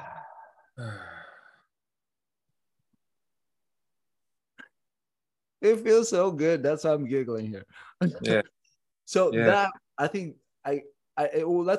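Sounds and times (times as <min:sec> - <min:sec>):
deep sigh-like breath out during a guided breathing exercise: 0:00.0 - 0:01.8
speech: 0:05.6 - 0:11.7.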